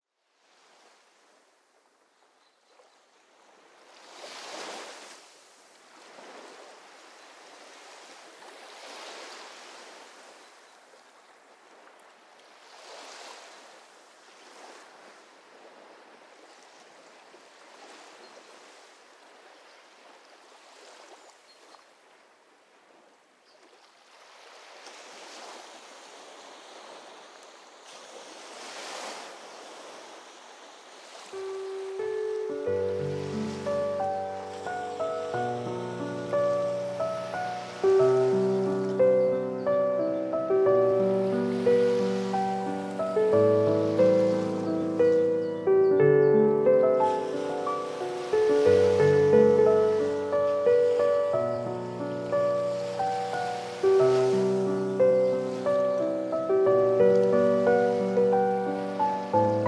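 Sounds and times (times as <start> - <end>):
ocean waves: 0.4 - 2.0, 2.7 - 59.6
piano: 31.3 - 59.6.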